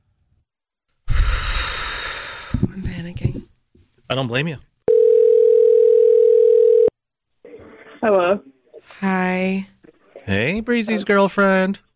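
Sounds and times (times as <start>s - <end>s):
speech: 2.8s - 3.5s, 4.1s - 4.7s, 8.0s - 9.7s, 10.3s - 11.9s
outgoing phone call ringing tone: 4.9s - 6.9s.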